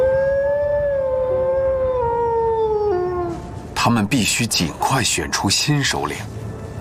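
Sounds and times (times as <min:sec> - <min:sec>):
arctic wolves howling in a pack: 0:00.0 - 0:03.6
speech: 0:03.8 - 0:06.4.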